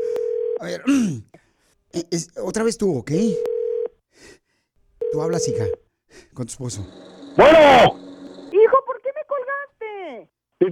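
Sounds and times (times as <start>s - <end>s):
steady electronic telephone tone: 0.0s - 0.6s, 5.0s - 5.8s, 6.6s - 8.6s
speech: 0.6s - 3.5s, 5.1s - 8.0s.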